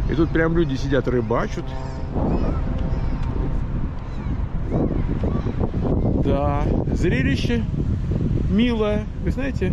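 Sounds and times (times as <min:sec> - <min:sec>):
faint sea at ocean beach: 0:00.0 - 0:09.7
strong wind buffeting microphone at ocean beach: 0:00.0 - 0:09.7
speech: 0:00.1 - 0:02.8, 0:06.2 - 0:07.9, 0:08.5 - 0:09.7
thin high cries: 0:00.2 - 0:06.2.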